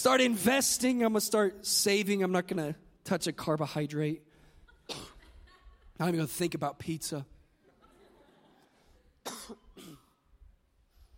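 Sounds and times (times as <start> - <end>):
speech: 0.0 - 4.3, 4.9 - 5.1, 6.0 - 7.4
laughter: 4.6 - 6.2, 7.6 - 9.2
sharp coughs: 4.8 - 5.4, 9.2 - 10.2.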